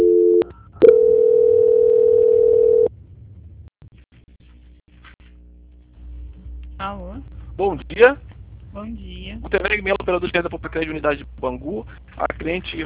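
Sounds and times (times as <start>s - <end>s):
telephone line tone during a call transfer: 0.0s - 2.9s
speech: 7.6s - 12.8s.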